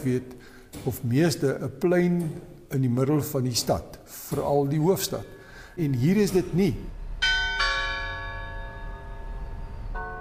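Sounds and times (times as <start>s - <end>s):
speech: 0.0s - 7.0s
large clock tower bell ringing: 6.1s - 10.2s.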